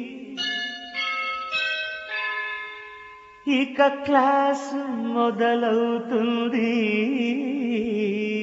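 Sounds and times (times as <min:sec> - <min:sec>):
school bell ringing for the first lesson: 0:00.3 - 0:03.6
speech: 0:03.6 - 0:08.3.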